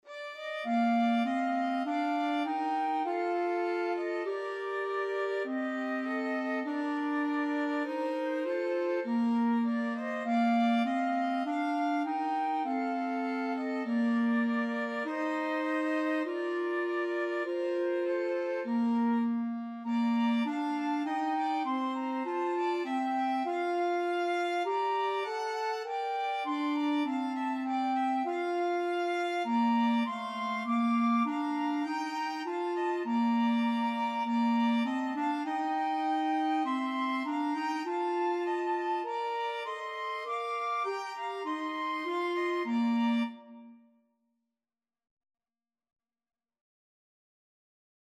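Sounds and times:
violin: 0:00.0 - 0:43.8
clarinet: 0:00.0 - 0:43.9
flute: 0:00.0 - 0:43.9.

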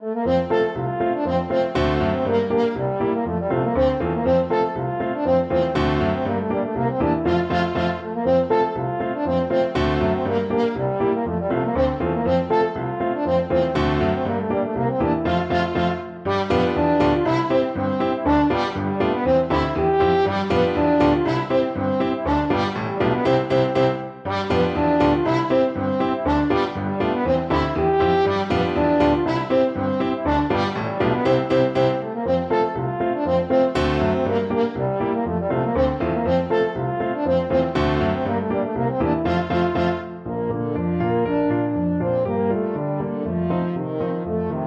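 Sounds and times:
French horn playing a Rheinlander polka: 0:00.0 - 0:44.5.

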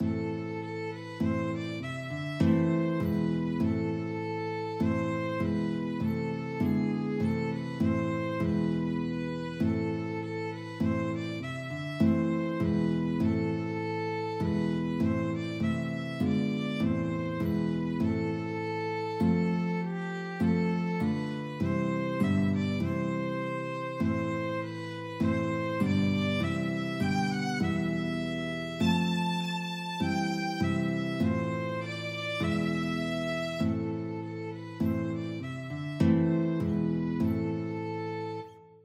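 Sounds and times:
guitar in a duet: 0:00.0 - 0:38.8
violin in a duet: 0:00.0 - 0:38.8.

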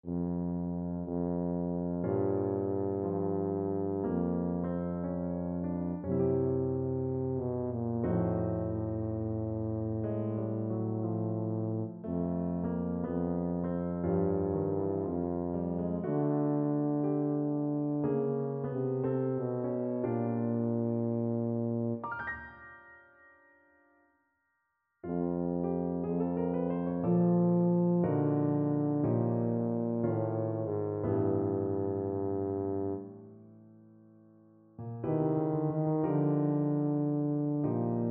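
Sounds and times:
jazzy birthday tune on tuba: 0:00.0 - 0:22.0, 0:25.1 - 0:33.1, 0:35.1 - 0:38.1.

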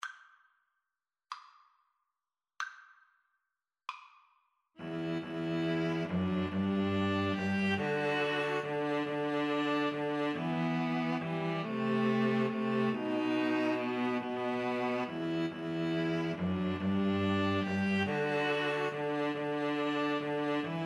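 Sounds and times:
string trio playing: 0:04.8 - 0:20.8.

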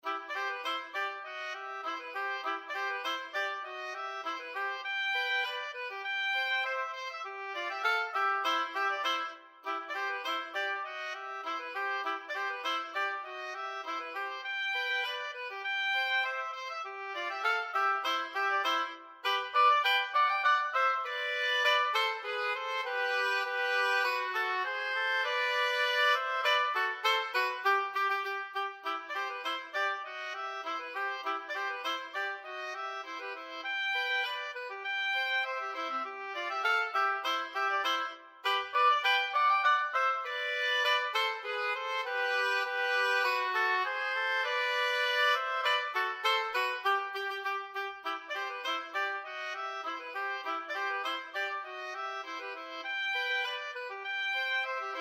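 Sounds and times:
oboe duet: 0:00.0 - 0:54.9.

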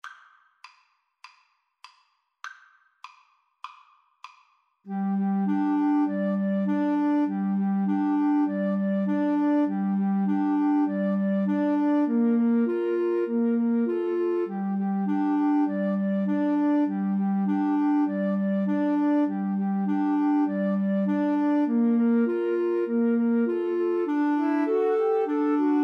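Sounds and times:
two flutes playing a classical piece: 0:04.9 - 0:25.8.

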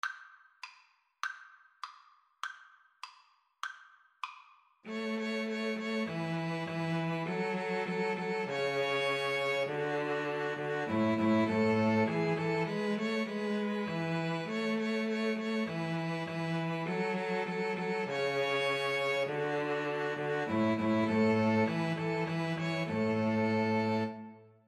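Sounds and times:
string trio playing: 0:04.9 - 0:24.4.

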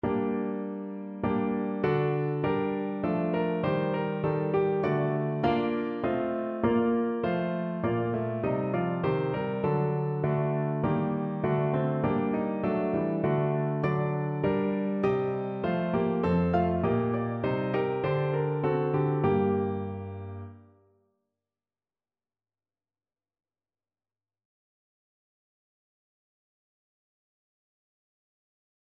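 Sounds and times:
piano melody: 0:00.0 - 0:20.7.

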